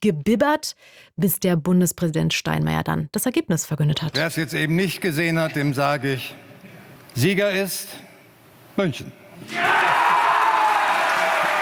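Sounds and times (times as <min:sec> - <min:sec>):
speech: 0:00.0 - 0:06.5, 0:07.2 - 0:08.1, 0:08.8 - 0:09.9
large indoor crowd cheering and shouting in a hall in Baden-Baden: 0:09.4 - 0:11.6.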